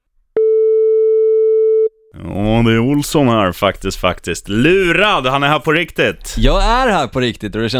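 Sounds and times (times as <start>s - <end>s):
steady unbroken telephone line tone: 0.4s - 2.0s
speech: 2.6s - 7.7s.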